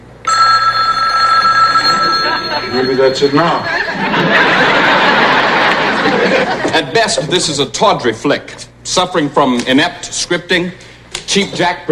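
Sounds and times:
telephone bell ringing: 0.2s - 5.2s
laughter: 1.8s - 7.4s
speech: 2.7s - 4.5s, 6.2s - 11.9s.

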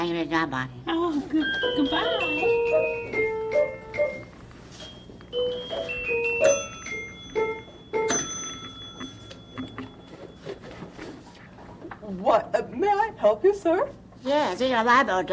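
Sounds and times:
speech: 0.0s - 2.9s, 12.2s - 15.3s
small bell rung at a museum to summon help: 1.4s - 10.8s.

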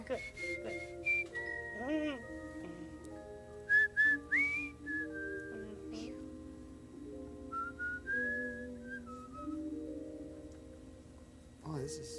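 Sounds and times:
speech: 0.0s - 1.0s, 1.8s - 2.4s
person whistling a wandering melody: 0.0s - 2.8s, 3.7s - 6.0s, 7.4s - 9.8s
steady low hum: 0.0s - 12.1s.

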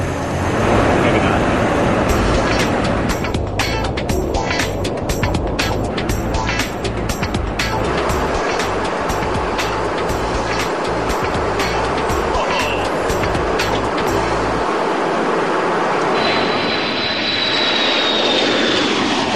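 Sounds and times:
heavy aircraft engine noise: 0.0s - 19.3s
jet fuel flowing through aerial refueling boom from tanker into bomber: 0.0s - 19.3s
rapid rhythmic clicking: 2.1s - 14.3s.

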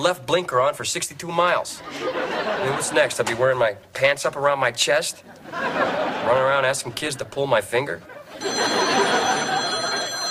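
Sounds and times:
speech: 0.0s - 8.8s
laughter: 1.8s - 3.6s, 5.0s - 10.3s
telephone ringing with a continuous electric trill: 8.4s - 10.3s.

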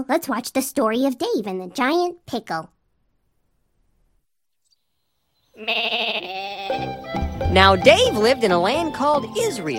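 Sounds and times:
speech: 0.0s - 2.8s, 5.6s - 9.7s
single sheep bleating: 5.5s - 6.9s.

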